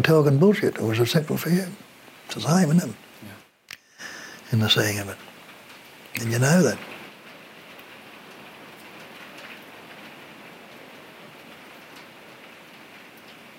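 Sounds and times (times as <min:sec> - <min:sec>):
speech: 0:00.0 - 0:03.3, 0:04.0 - 0:05.3, 0:06.2 - 0:06.9
steady rain falling: 0:00.0 - 0:13.5.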